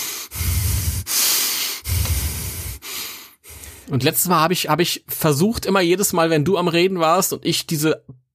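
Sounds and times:
person gasping for air after talking a lot: 0:00.0 - 0:04.0
speech: 0:03.9 - 0:08.2.

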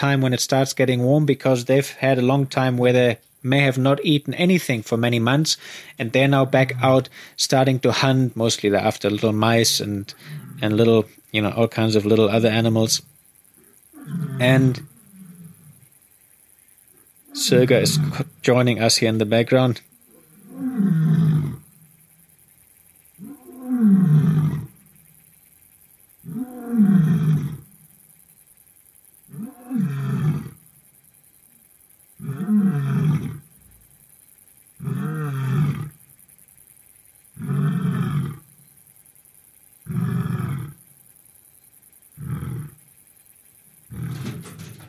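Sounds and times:
speech: 0:00.0 - 0:13.1, 0:14.0 - 0:14.9, 0:17.4 - 0:19.9, 0:20.6 - 0:21.2
big cat roaring in the daytime: 0:10.2 - 0:10.7, 0:13.9 - 0:15.8, 0:17.3 - 0:18.4, 0:20.1 - 0:21.7, 0:23.2 - 0:24.8, 0:26.3 - 0:27.7, 0:29.3 - 0:30.6, 0:32.2 - 0:33.5, 0:34.8 - 0:36.0, 0:37.4 - 0:38.5, 0:39.9 - 0:40.8, 0:42.2 - 0:42.8, 0:43.8 - 0:44.8.

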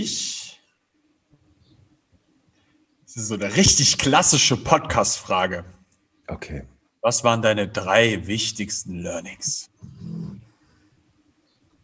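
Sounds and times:
speech: 0:00.0 - 0:00.3, 0:03.2 - 0:10.3
dog lying down snoring: 0:09.8 - 0:10.5.

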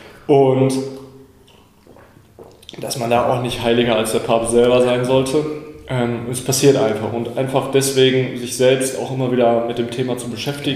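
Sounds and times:
speech: 0:00.3 - 0:01.0, 0:02.7 - 0:10.7
person sipping water: 0:01.4 - 0:02.8.

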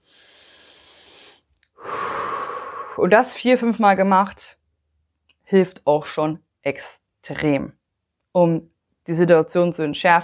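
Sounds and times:
deep breath: 0:00.0 - 0:03.0
speech: 0:03.0 - 0:04.6, 0:05.5 - 0:07.8, 0:08.4 - 0:10.2.

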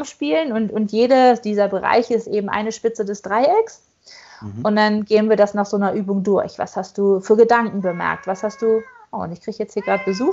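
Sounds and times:
speech: 0:00.0 - 0:10.3
cat meowing: 0:07.7 - 0:09.1, 0:09.8 - 0:10.3.

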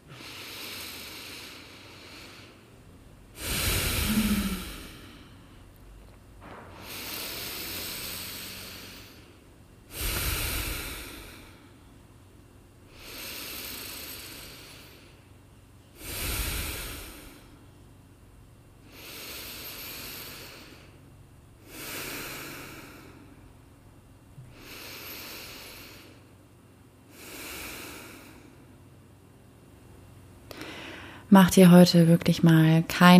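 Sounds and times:
slow deep breaths in and out: 0:00.0 - 0:05.7, 0:06.6 - 0:12.0, 0:12.8 - 0:17.8, 0:18.8 - 0:23.6, 0:24.4 - 0:28.8, 0:30.5 - 0:31.3
speech: 0:31.3 - 0:33.1.

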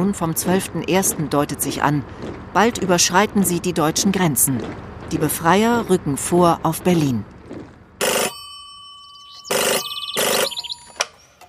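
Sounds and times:
speech: 0:00.0 - 0:07.3
old-fashioned telephone bell ringing: 0:08.0 - 0:11.2.

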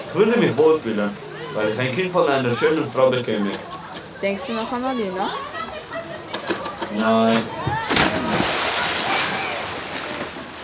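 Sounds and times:
faint murmur of voices at a water park: 0:00.0 - 0:10.4
speech: 0:00.1 - 0:05.5, 0:06.9 - 0:07.7
water sloshing and splashing at a water park: 0:07.6 - 0:10.6.

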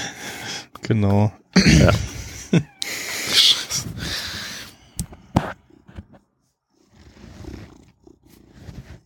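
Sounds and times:
speech: 0:00.9 - 0:02.7
cat purring: 0:05.6 - 0:09.0.

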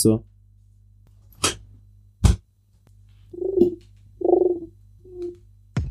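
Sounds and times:
speech: 0:00.0 - 0:00.3
carrier pigeon cooing: 0:03.4 - 0:05.4.

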